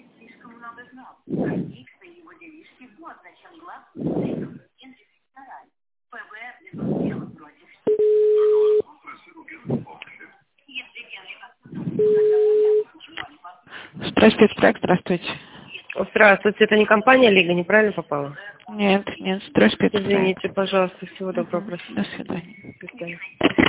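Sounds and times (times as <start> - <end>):
speech: 0.7 - 12.6, 14.0 - 23.6
recorded voice speaking on a telephone line: 1.1 - 5.0, 6.6 - 23.6
telephone beeps on a call being transferred: 7.9 - 8.8, 12.0 - 12.9.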